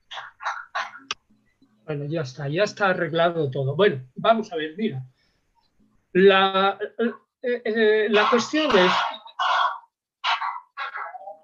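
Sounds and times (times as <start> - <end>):
speech: 1.9 - 5.2, 6.1 - 9.1
dog barking through a meeting participant's microphone: 8.2 - 11.4.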